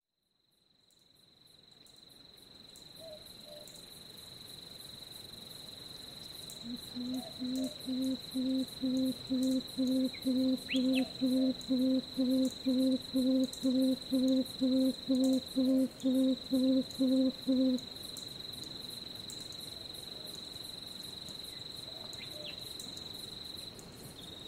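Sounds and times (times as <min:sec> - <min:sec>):
Papuan frogmouth calling: 0:06.7 - 0:17.8.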